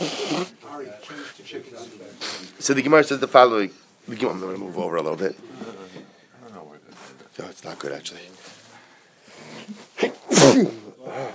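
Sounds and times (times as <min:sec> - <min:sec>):
speech: 0:01.5 - 0:05.6, 0:07.4 - 0:08.5, 0:09.6 - 0:11.3
person sneezing: 0:09.9 - 0:11.3.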